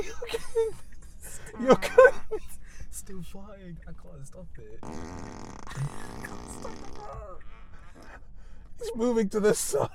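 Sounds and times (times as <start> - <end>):
speech: 1.6 - 2.2, 3.1 - 9.9
long loud buzzy fart: 4.8 - 7.2.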